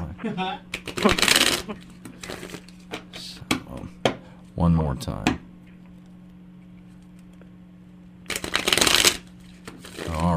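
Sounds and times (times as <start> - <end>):
speech: 0.2 - 2.7, 4.6 - 5.4
deck of tarot cards riffle shuffled: 0.7 - 3.0, 8.3 - 10.3.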